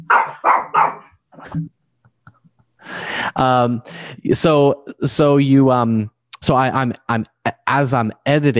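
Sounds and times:
dog barking and howling: 0:00.0 - 0:01.2
speech: 0:01.5 - 0:01.8, 0:02.9 - 0:08.5.

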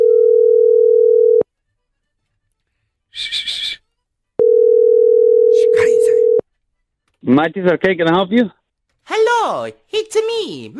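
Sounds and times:
telephone dial tone while a call is being placed: 0:00.0 - 0:01.4, 0:04.4 - 0:05.5
speech: 0:07.3 - 0:08.6, 0:09.4 - 0:10.7.

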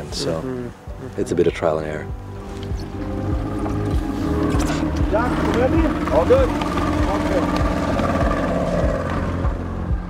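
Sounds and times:
speech: 0:00.1 - 0:02.9, 0:05.1 - 0:07.8
skiff motor droning heading out to sea: 0:02.1 - 0:10.0.

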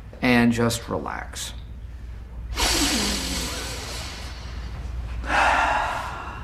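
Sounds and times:
speech: 0:00.3 - 0:01.6
person taking a big deep breath: 0:02.6 - 0:06.4.

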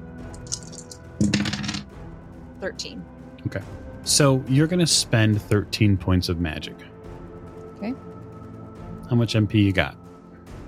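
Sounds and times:
three six-sided dice rattling across a hard surface: 0:00.4 - 0:01.8
speech: 0:01.2 - 0:01.5, 0:02.6 - 0:06.9, 0:07.8 - 0:08.2, 0:09.1 - 0:10.0.

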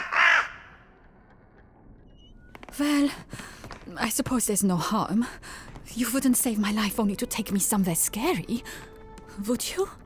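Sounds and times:
crow cawing: 0:00.0 - 0:00.9
speech: 0:02.8 - 0:10.0.

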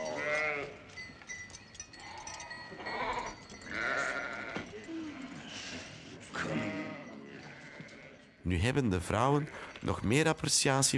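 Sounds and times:
sheep bleating while watered at a well: 0:00.0 - 0:00.8, 0:02.8 - 0:05.5, 0:06.3 - 0:08.3
speech: 0:08.5 - 0:10.9.

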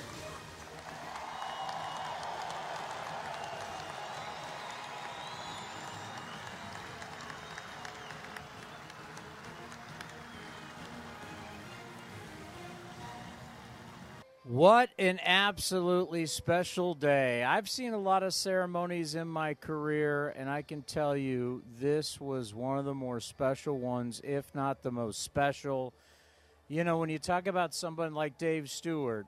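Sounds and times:
large crowd applauding at a ceremony: 0:00.0 - 0:14.2
cheers and whistles: 0:00.1 - 0:13.6
speech: 0:14.5 - 0:26.1, 0:26.7 - 0:29.2.

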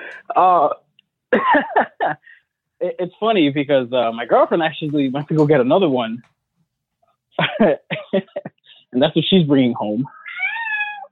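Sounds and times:
speech: 0:00.1 - 0:06.3, 0:07.4 - 0:10.2
laughter: 0:01.3 - 0:02.4, 0:07.4 - 0:08.6
cat meowing: 0:10.0 - 0:11.1.

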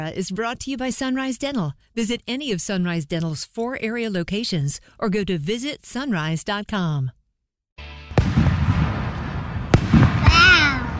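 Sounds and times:
speech: 0:00.0 - 0:07.2
firework bangs: 0:08.1 - 0:10.9
two-year-old girl exclaiming wow: 0:10.2 - 0:10.9.

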